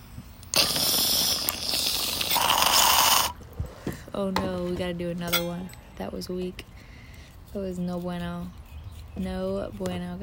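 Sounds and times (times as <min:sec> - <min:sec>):
bong hit bubbling through an extra-large deep bowl outdoors: 0:00.5 - 0:03.4
speech: 0:04.2 - 0:06.7, 0:07.5 - 0:08.6, 0:09.2 - 0:10.2.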